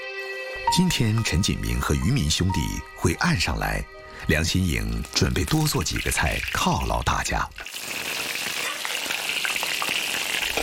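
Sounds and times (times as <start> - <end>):
speech: 0.6 - 8.1
dried fish frying in a hot pan: 5.5 - 6.9, 7.6 - 10.6.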